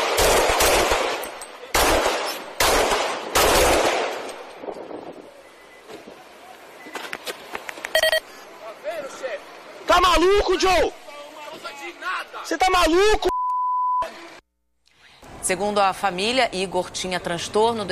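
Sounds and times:
pistol shots fired by a police officer: 0:00.0 - 0:04.4
brief tone: 0:05.4 - 0:05.9, 0:07.9 - 0:08.2, 0:13.3 - 0:14.1
speech: 0:10.2 - 0:11.0, 0:12.4 - 0:13.3, 0:15.5 - 0:17.9.

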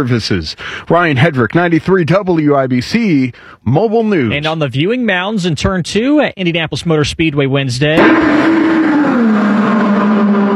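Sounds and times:
speech: 0:00.0 - 0:08.7
IndyCar race car engine driving on the Indianapolis Motor Speedway oval: 0:08.0 - 0:10.5.

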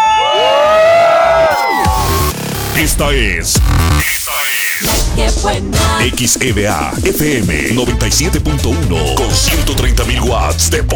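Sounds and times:
crowd shouting a cheer: 0:00.0 - 0:02.4
speech: 0:02.8 - 0:04.2, 0:04.8 - 0:10.9.

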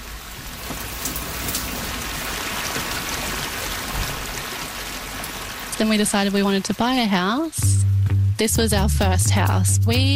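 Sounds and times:
heavy rain pouring: 0:00.0 - 0:10.1
speech: 0:05.8 - 0:10.1
faint low rumble: 0:07.6 - 0:10.1.

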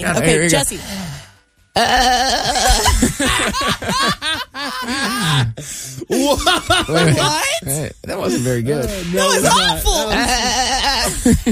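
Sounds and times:
speech: 0:00.0 - 0:01.2, 0:01.8 - 0:11.4
human voice imitating a sheep bleat: 0:01.8 - 0:02.9, 0:09.9 - 0:11.1
laughter: 0:02.6 - 0:11.4.

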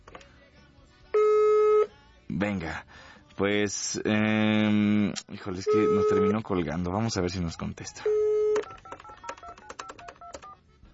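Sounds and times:
speech: 0:02.4 - 0:08.3
telephone touch-tone dialing beeps: 0:05.6 - 0:06.4, 0:08.1 - 0:10.6.

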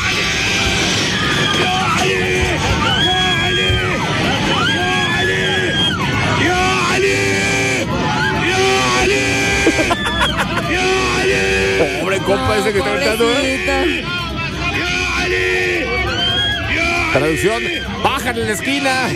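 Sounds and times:
passengers screaming in a plane cabin during severe turbulence: 0:00.0 - 0:19.1
laughter: 0:09.0 - 0:12.5
speech: 0:12.5 - 0:14.2, 0:17.2 - 0:19.1.

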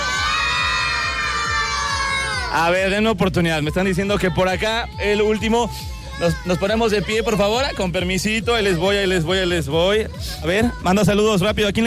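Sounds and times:
crowd of children shouting goodbye in unison into a microphone: 0:00.0 - 0:02.8, 0:03.8 - 0:09.4
speech: 0:02.5 - 0:11.8.

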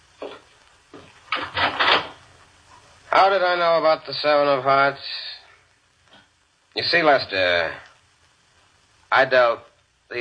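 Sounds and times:
wooden door scraping and creaking open: 0:01.3 - 0:02.2
speech: 0:03.1 - 0:05.2, 0:06.8 - 0:07.8, 0:09.1 - 0:10.1.

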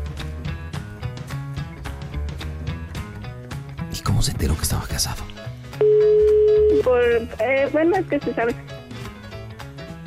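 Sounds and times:
speech: 0:04.0 - 0:06.0, 0:06.8 - 0:08.7
telephone dial tone after call is hung up: 0:05.8 - 0:06.9.

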